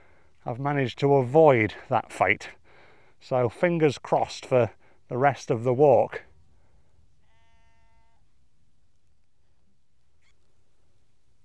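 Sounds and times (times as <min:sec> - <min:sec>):
speech: 0:00.4 - 0:02.6, 0:03.2 - 0:06.3
sheep bleating on moorland: 0:07.2 - 0:08.2.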